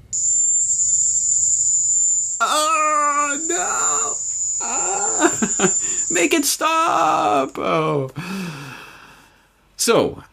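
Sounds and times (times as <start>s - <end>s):
Indies short-tailed cricket chirping: 0.0s - 7.6s
speech: 5.5s - 8.6s, 9.8s - 10.3s.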